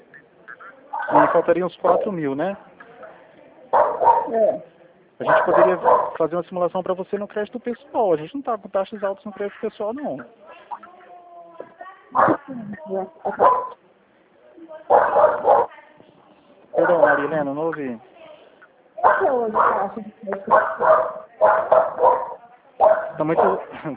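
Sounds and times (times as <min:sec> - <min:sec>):
dog barking and yelping: 0:01.0 - 0:02.1, 0:03.7 - 0:04.6, 0:05.2 - 0:06.2, 0:12.2 - 0:12.4, 0:13.2 - 0:13.8, 0:14.9 - 0:15.7, 0:16.8 - 0:17.4, 0:19.0 - 0:23.7
speech: 0:01.1 - 0:02.7, 0:04.3 - 0:10.8, 0:12.1 - 0:13.8, 0:16.8 - 0:18.1, 0:19.0 - 0:23.9.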